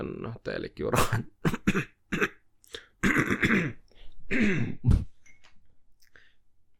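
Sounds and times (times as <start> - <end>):
speech: 0.0 - 2.4, 3.1 - 5.1
person clearing throat hard after choking on food: 1.0 - 2.4, 3.0 - 5.1.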